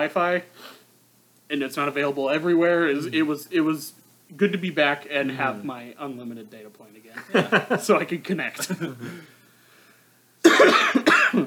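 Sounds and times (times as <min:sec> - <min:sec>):
speech: 0:00.0 - 0:00.8, 0:01.5 - 0:09.4
faint breathing: 0:09.0 - 0:10.4
person coughing: 0:10.4 - 0:11.4.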